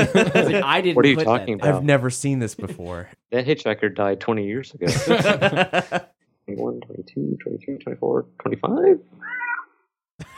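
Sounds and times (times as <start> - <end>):
laughter: 0.0 - 1.6, 4.8 - 6.1
speech: 0.3 - 5.0, 6.5 - 9.0
cat meowing: 9.2 - 9.8.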